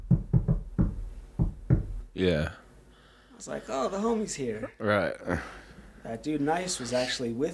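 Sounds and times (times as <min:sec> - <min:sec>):
relaxed friendly knocking on a door: 0:00.0 - 0:02.1
speech: 0:02.2 - 0:02.6, 0:03.4 - 0:07.5.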